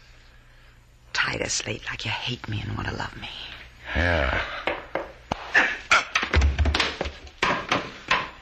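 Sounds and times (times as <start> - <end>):
speech: 1.4 - 4.6
knocks and thuds of a man struck with the butt of a gun: 6.1 - 8.4.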